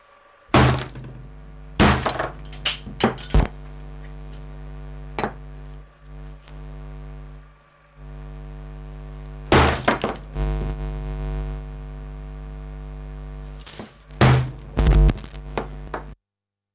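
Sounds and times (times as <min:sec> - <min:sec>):
steady droning hum of electronic feedback: 0:00.0 - 0:16.2
heavy hammer smashing a loudspeaker: 0:00.6 - 0:01.2, 0:01.8 - 0:02.4, 0:09.5 - 0:10.2, 0:13.7 - 0:14.7.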